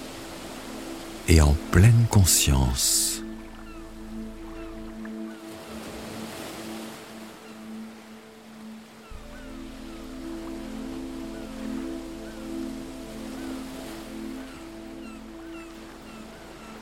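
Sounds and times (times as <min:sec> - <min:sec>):
soft ocean waves washing in on a beach: 0:00.0 - 0:16.8
speech: 0:01.3 - 0:03.3
low humming drone of sustained tones: 0:03.2 - 0:06.0, 0:09.1 - 0:16.8.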